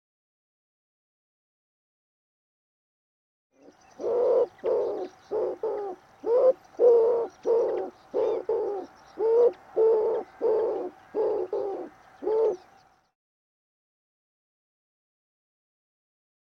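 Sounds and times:
bird cooing in short low hollow notes: 3.6 - 12.8.

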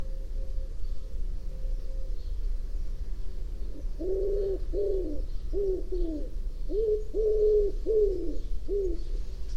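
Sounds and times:
bird cooing: 0.0 - 9.4.

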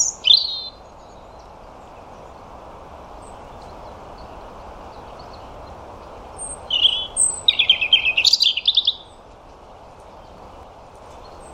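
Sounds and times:
European robin singing: 0.0 - 11.5
low background hiss: 0.0 - 11.5.

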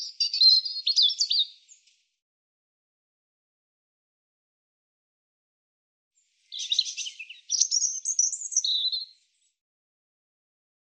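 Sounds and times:
European robin singing: 0.0 - 1.9, 6.5 - 9.5.

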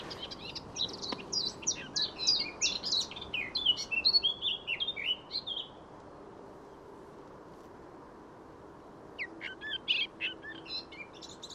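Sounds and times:
Eurasian blackcap singing a rapid chattering warble: 0.0 - 5.8, 9.2 - 11.5.

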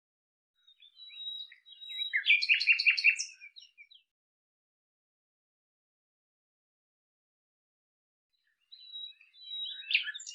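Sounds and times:
common nightingale song: 0.6 - 4.1, 8.4 - 10.3.

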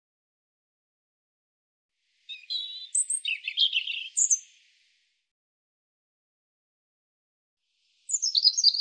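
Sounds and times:
European robin singing: 2.0 - 5.1, 7.8 - 8.7.

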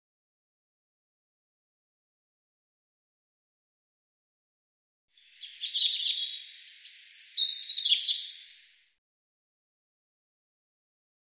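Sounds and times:
European robin song: 5.2 - 8.9.

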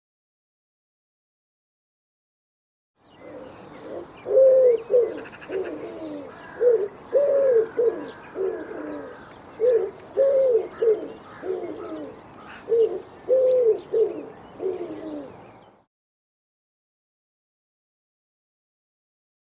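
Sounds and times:
bird cooing: 3.1 - 15.7.

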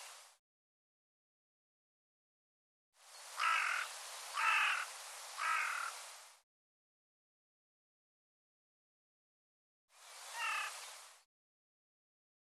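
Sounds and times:
bird giving harsh nasal caw-like calls: 3.4 - 6.0, 10.3 - 10.8.

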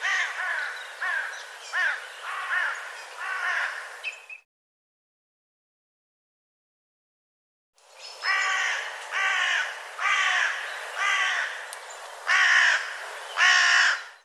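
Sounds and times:
crow-like bird cawing: 0.0 - 3.9, 8.2 - 14.2.

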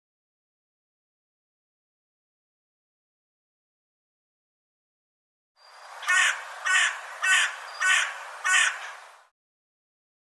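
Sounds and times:
bird giving harsh cawing calls: 6.0 - 9.3.

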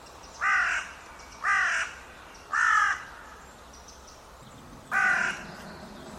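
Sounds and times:
steady low background hiss: 0.0 - 6.1
bird giving harsh hoarse caw-like calls: 0.4 - 3.4, 4.9 - 5.7.

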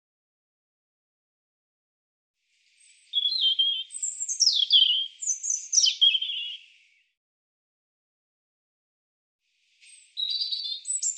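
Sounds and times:
European robin song: 2.7 - 7.2, 9.7 - 11.1.

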